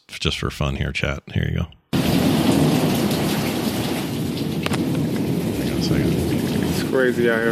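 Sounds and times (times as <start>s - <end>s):
speech: 0.2s - 1.8s, 5.9s - 6.3s, 6.9s - 7.5s
deep thunderclap rumbling: 1.9s - 7.5s
steady heavy rain: 1.9s - 7.5s
sharp crackle: 2.0s - 7.5s.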